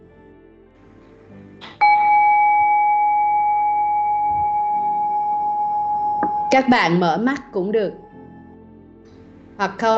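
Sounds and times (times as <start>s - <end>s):
meditation bell ringing: 1.8s - 6.7s
speech: 6.5s - 8.0s, 9.6s - 9.9s.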